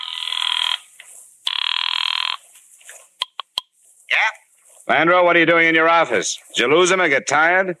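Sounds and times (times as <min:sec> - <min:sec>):
telephone ringing: 0:00.0 - 0:00.8, 0:01.5 - 0:02.4
speech: 0:04.3 - 0:07.7.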